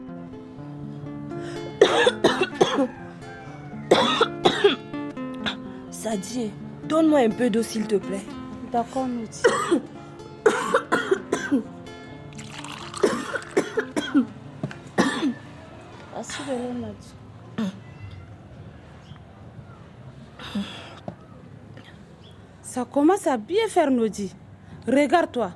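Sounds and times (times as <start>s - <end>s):
person coughing: 1.8s - 3.0s, 3.9s - 4.8s, 9.4s - 11.6s, 13.0s - 14.3s, 15.0s - 15.4s
speech: 1.8s - 3.0s, 6.1s - 9.9s, 11.5s - 11.7s, 16.5s - 17.2s, 22.9s - 25.5s.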